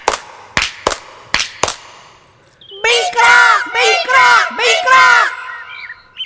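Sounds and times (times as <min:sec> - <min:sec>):
sharp hand claps from elves in a forest: 0:00.0 - 0:02.0
group of high elf voices shouting excitedly: 0:02.7 - 0:06.0.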